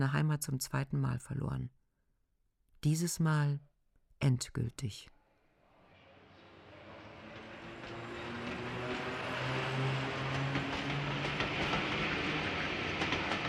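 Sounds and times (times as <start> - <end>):
speech: 0.0 - 1.8, 2.8 - 5.2
train pulling away from a station platform rumbling: 5.8 - 13.4
train wheels clicking: 6.6 - 13.4.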